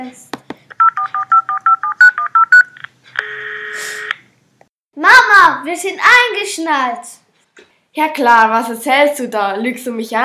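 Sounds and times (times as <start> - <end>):
speech: 0.0 - 0.3, 5.2 - 7.2, 8.0 - 10.2
touch-tone telephone keypad beeps as a number is dialled: 0.8 - 2.8.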